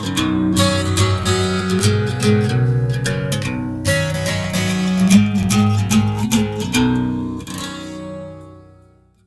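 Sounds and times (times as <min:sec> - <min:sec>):
endless acoustic phasing sound: 0:00.1 - 0:07.4.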